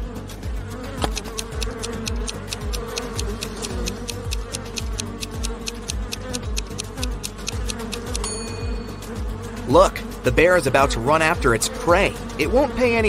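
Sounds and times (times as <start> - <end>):
dense swarm of angry bees buzzing: 0.0 - 13.0
rapid clicking pulses: 1.0 - 8.2
speech: 9.7 - 13.0.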